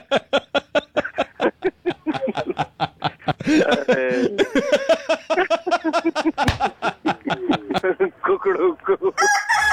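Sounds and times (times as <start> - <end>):
chuckling sounds: 0.0 - 9.2
rooster crowing: 9.2 - 9.7.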